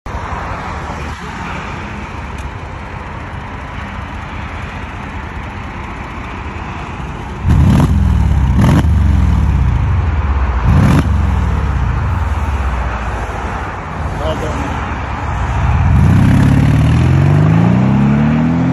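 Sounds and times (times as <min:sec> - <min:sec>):
Mercedes-Benz CLS500 exhaust: 0:06.4 - 0:18.6.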